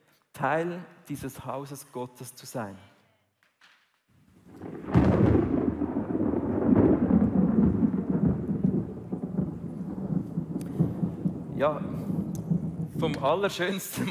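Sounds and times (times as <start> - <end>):
speech: 0.4 - 2.9, 11.6 - 12.1, 13.0 - 14.1
falling rain: 4.4 - 14.1
thunder crack and rumble: 4.5 - 14.1
laughter: 13.9 - 14.1.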